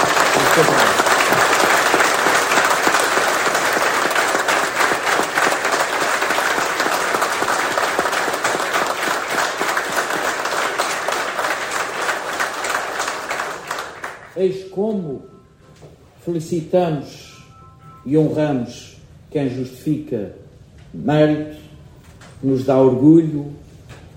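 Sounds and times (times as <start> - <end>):
applause from a sizable audience: 0.0 - 14.4
speech: 0.6 - 0.9, 14.4 - 15.3, 16.2 - 17.2, 18.0 - 21.6, 22.4 - 23.6.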